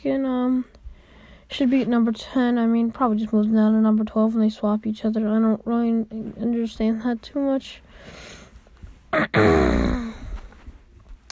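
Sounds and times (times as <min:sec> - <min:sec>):
speech: 0:00.0 - 0:00.8, 0:01.5 - 0:08.4, 0:09.1 - 0:10.0
gravelly throat clearing: 0:09.2 - 0:10.2.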